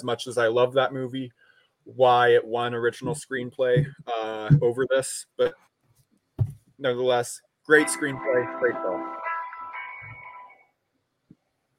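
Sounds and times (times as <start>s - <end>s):
speech: 0.0s - 5.7s, 6.8s - 9.2s
soft knock: 6.4s - 6.6s
phone playing thin electronic tones: 7.8s - 10.6s.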